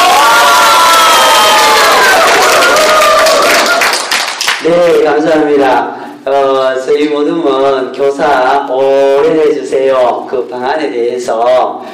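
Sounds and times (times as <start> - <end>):
loud crowd applauding: 0.0 - 4.6
speech: 4.7 - 11.9.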